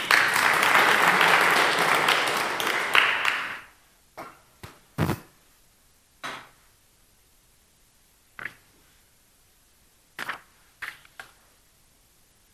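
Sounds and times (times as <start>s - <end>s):
crowd applauding: 0.0s - 3.7s
scattered isolated claps from individuals: 0.0s - 3.7s.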